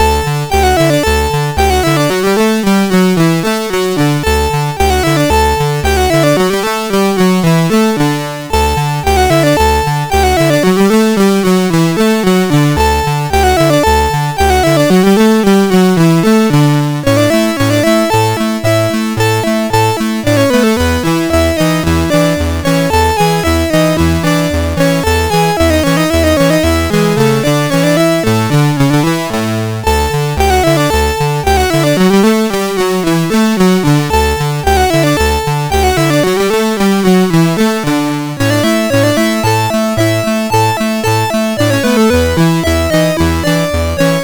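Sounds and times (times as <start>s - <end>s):
musette in D on sound chip: 0.0s - 44.2s.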